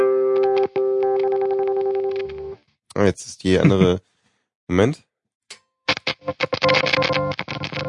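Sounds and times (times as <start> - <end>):
sustained buzzy distorted electric guitar tone: 0.0 - 2.6, 5.9 - 7.8
speech: 3.0 - 4.1, 4.7 - 5.1
laughter: 3.4 - 4.0.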